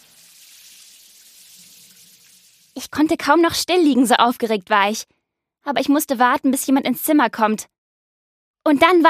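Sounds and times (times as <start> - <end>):
shower running: 0.0 - 3.0
speech: 2.8 - 7.8, 8.6 - 9.0.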